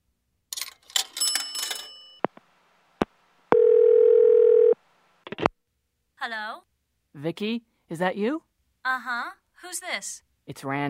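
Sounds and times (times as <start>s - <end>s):
old telephone bell ringing: 3.5s - 4.8s
speech: 6.2s - 10.8s.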